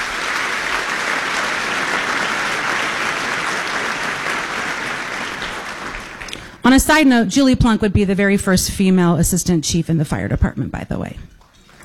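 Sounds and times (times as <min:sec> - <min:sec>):
applause from a sizable audience: 0:00.0 - 0:06.6
speech: 0:06.6 - 0:11.3.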